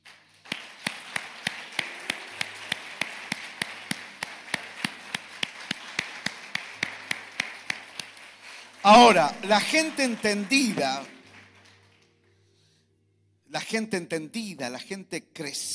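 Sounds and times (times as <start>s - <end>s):
audience clapping in a steady rhythm: 0.0s - 12.3s
speech: 8.9s - 11.2s, 13.7s - 15.7s.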